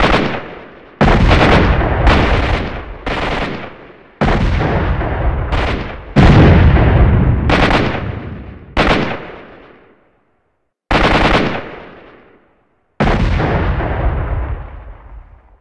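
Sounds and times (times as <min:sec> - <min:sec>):
battle ambience: 0:00.0 - 0:15.6.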